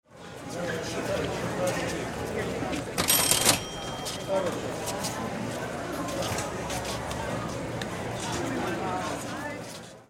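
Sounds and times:
market ambience: 0.1 - 10.0
cash register: 3.0 - 4.3.

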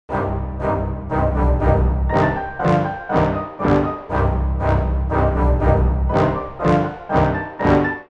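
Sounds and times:
orchestral brass in threatening jingle loop: 0.1 - 8.1
orchestral strings in threatening jingle loop: 0.1 - 8.1
piano in threatening jingle loop: 0.1 - 8.1.

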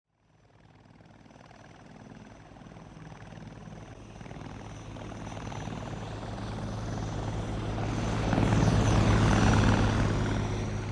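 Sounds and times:
military helicopter flying overhead: 0.1 - 10.9.

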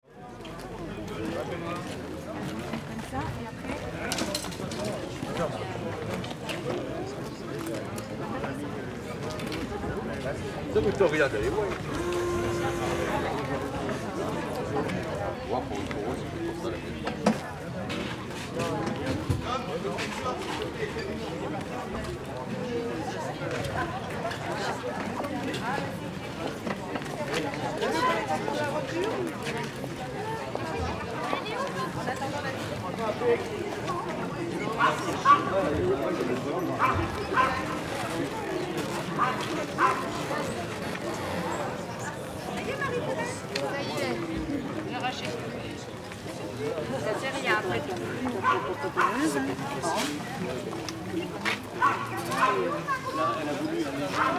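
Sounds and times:
peaceful Eastern market crowd: 0.0 - 54.3.

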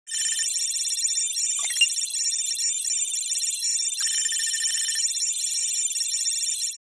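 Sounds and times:
digital hologram interface data searching: 0.1 - 6.8.

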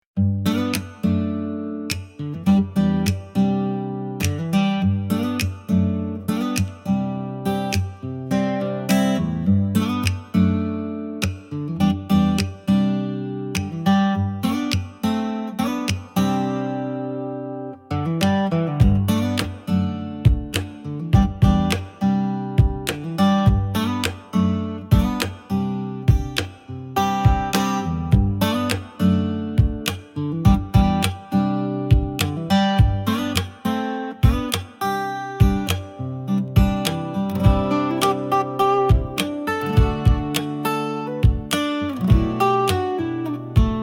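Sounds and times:
acoustic beat: 0.2 - 43.8.

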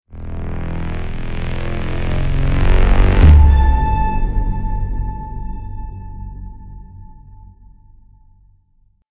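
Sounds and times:
cinematic braam hit impact: 0.1 - 7.3.

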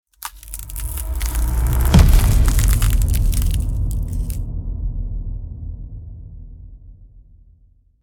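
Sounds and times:
cinematic ice freezing transition: 0.2 - 4.4.

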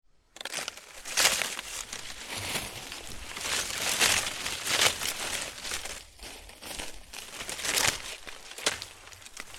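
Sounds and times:
garden brush leaves rustling with foliage movement: 0.4 - 9.5.

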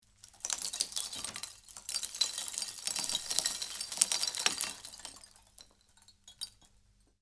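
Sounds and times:
tiny debris slowly poured on a rock pile: 0.4 - 5.6.

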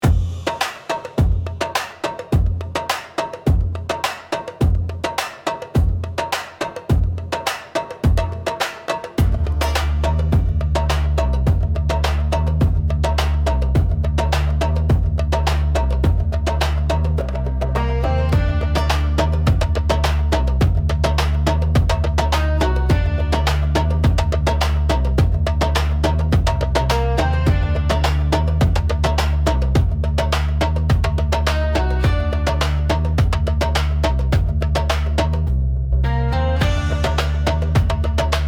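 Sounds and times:
middle eastern beat: 0.0 - 38.4.

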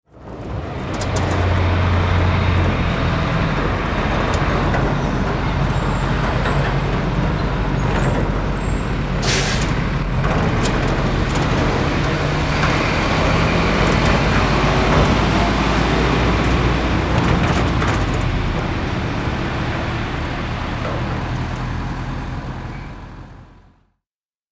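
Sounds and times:
garbage truck moving back and forth: 0.1 - 23.8.

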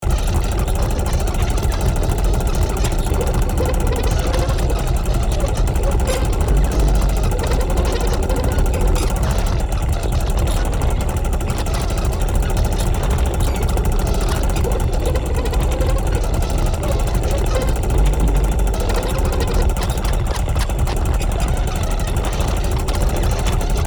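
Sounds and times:
unstable rotating vintage mechanism: 0.0 - 23.8.

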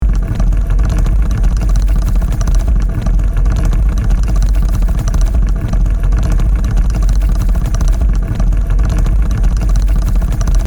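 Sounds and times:
machinery gears rattling: 0.0 - 10.6.

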